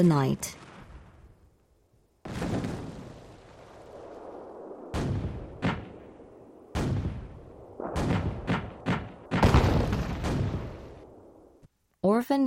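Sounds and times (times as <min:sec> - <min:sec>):
speech: 0:00.0 - 0:00.6, 0:12.2 - 0:12.4
wartime artillery explosions: 0:00.4 - 0:01.6, 0:02.2 - 0:11.6
wartime booming gunfire: 0:04.9 - 0:11.1.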